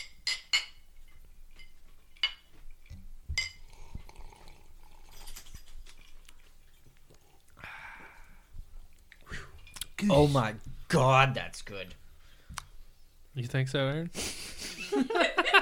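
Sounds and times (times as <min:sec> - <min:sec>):
glasses of blended malt scotch whisky clinking in a toast: 0:00.0 - 0:06.8
soft liquid sounds: 0:01.0 - 0:10.8
quiet sipping: 0:02.7 - 0:10.6
speech: 0:10.0 - 0:12.0, 0:13.4 - 0:15.3
laughter: 0:14.2 - 0:15.6.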